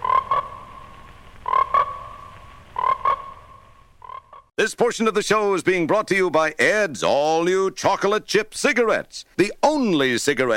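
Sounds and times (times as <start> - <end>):
frogs croaking in loud buzzy double calls: 0.0 - 4.5
speech: 4.6 - 10.5.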